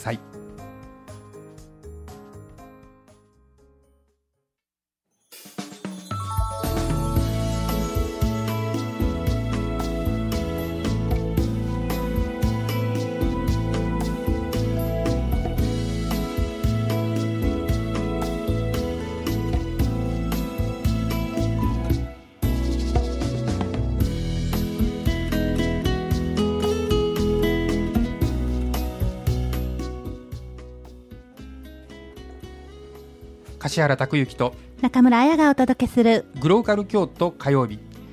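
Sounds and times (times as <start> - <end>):
speech: 0.0 - 0.4, 33.7 - 37.9
Japanese pop song with driving beat and bright synths: 6.1 - 30.4.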